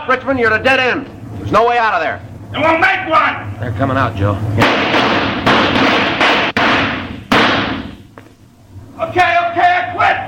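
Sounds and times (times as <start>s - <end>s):
speech: 0.2s - 5.3s, 9.0s - 10.2s
gunshots in a police standoff at a dead end: 4.6s - 8.0s.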